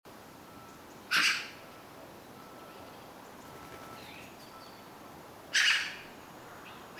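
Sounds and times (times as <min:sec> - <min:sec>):
Eurasian magpie Pica pica giving harsh rasping notes: 0:01.1 - 0:01.6, 0:05.5 - 0:06.1.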